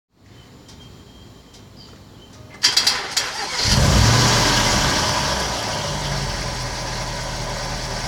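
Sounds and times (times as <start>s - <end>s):
Jaguar XF XFR X250 engine starting up with electrical faults: 2.6s - 8.0s.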